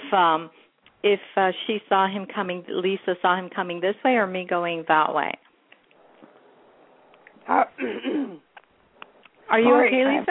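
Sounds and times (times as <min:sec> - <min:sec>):
speech: 0:00.1 - 0:05.4, 0:07.5 - 0:08.4, 0:09.5 - 0:10.2
raspy hacking cough: 0:07.8 - 0:08.5.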